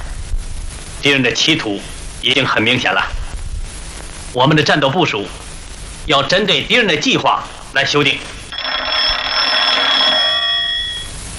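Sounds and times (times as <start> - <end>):
speech: 1.0 - 3.2, 4.4 - 5.4, 6.1 - 8.4
telephone bell ringing in a metallic trill: 8.5 - 11.2.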